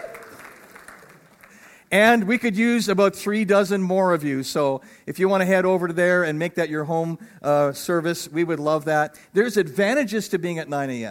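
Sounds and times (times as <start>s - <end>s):
room full of people clapping: 0.0s - 2.0s
speech: 1.9s - 11.1s.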